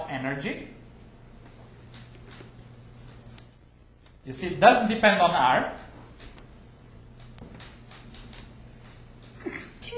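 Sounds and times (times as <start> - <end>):
low steady hum: 0.0 - 9.9
speech: 0.1 - 0.8, 4.2 - 5.8
person sneezing in a lecture room: 9.4 - 9.8.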